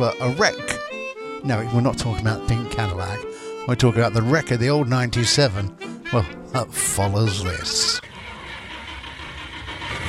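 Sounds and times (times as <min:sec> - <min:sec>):
speech: 0:00.0 - 0:00.8, 0:01.4 - 0:08.0
car engine rumble: 0:08.0 - 0:10.0.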